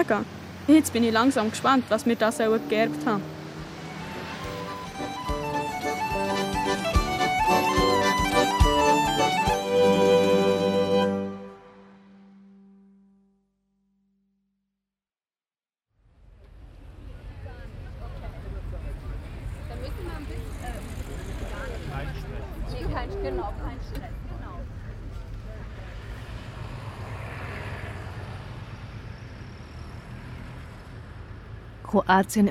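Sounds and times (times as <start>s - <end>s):
speech: 0.0s - 3.3s, 32.1s - 32.5s
low rumble of cars, buses and taxis circling at a ferry port in Split: 0.0s - 11.4s, 16.0s - 32.5s
drone of boats coming in to anchor: 0.0s - 12.3s, 16.5s - 32.5s
wash of voices at a ferry port in Split: 17.1s - 26.1s.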